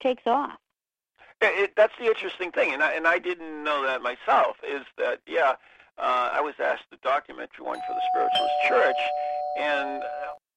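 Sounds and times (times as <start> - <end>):
speech: 0.0 - 0.6, 1.4 - 10.2
doorbell ringing: 7.8 - 10.4.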